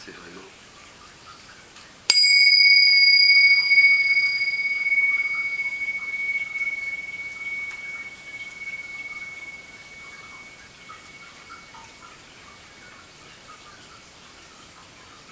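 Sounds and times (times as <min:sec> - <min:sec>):
bell struck for a moment of mindfulness: 0:02.1 - 0:13.0.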